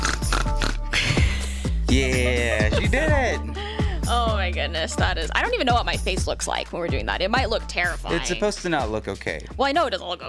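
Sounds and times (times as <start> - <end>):
person mimicking a pig with oinks and snorting grunts: 0.0 - 1.0
speech: 1.9 - 10.2.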